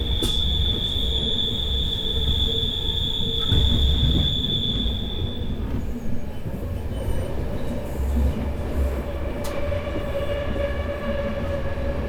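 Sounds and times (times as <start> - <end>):
high train wheel squeal: 0.0 - 5.8
train rolling with a dense low rumble in Vienna: 0.0 - 12.0.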